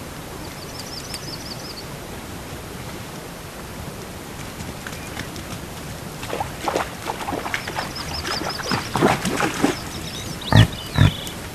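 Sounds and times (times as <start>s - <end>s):
background hiss: 0.0s - 11.5s
birds twittering: 0.4s - 1.9s, 4.8s - 5.6s, 6.3s - 11.5s
reindeer grunting and clicking: 10.1s - 11.5s.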